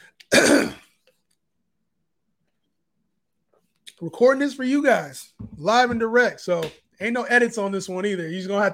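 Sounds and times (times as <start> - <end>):
loud raspy throat clearing: 0.3 - 0.9
speech: 4.0 - 8.7.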